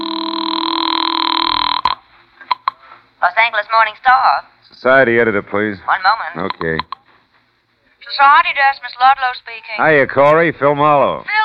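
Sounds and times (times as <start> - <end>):
telephone ringing: 0.0 - 2.6
speech: 3.4 - 7.0, 8.0 - 11.4.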